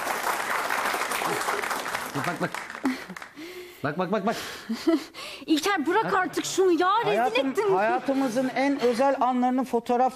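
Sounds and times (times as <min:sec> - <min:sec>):
audience clapping: 0:00.0 - 0:03.6
speech: 0:02.1 - 0:10.1
laughter: 0:05.8 - 0:09.1.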